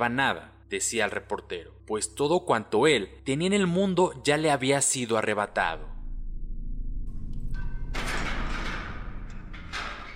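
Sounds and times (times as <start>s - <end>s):
speech: 0.0s - 6.0s
heavy metal bolts of a prison cell door grinding and creaking: 7.3s - 10.1s
prison cell door sliding open with scraping rumble: 7.4s - 10.1s
sharp metal clanks of prison cell door: 7.4s - 10.1s.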